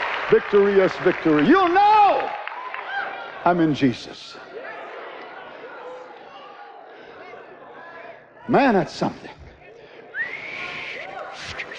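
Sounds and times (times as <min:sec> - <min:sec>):
speech: 0:00.3 - 0:02.1, 0:03.4 - 0:04.4, 0:08.5 - 0:09.4
person whistling a smooth rising note: 0:10.2 - 0:11.7.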